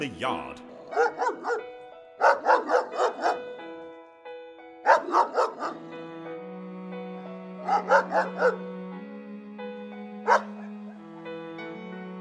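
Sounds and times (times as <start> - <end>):
speech: 0.0 - 1.6
dog barking: 0.6 - 4.0, 4.8 - 5.9, 7.6 - 8.6, 10.2 - 10.8.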